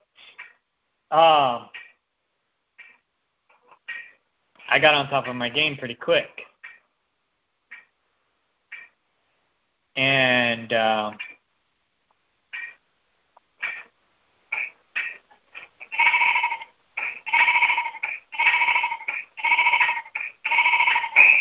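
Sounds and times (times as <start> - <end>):
speech: 1.1 - 1.8, 4.7 - 6.4, 10.0 - 11.3
sheep bleating while being sheared for wool: 16.0 - 16.7, 17.3 - 21.3.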